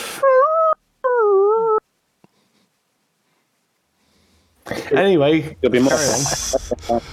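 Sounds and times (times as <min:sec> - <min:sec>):
dog whimpering and howling: 0:00.2 - 0:01.8
laughter: 0:04.7 - 0:07.1
speech: 0:04.9 - 0:07.1.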